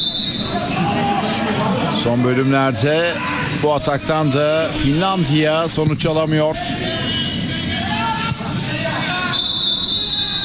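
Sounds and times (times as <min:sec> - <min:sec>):
football referee's final whistle at a Belarus vs Finland match: 0:00.0 - 0:00.6, 0:09.2 - 0:10.4
stadium crowd roaring and chattering: 0:00.0 - 0:10.4
speech: 0:02.0 - 0:07.0.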